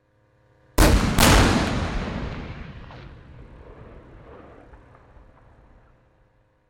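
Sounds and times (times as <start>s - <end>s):
Chieftain tank firing armour piercing round: 0.8s - 5.8s.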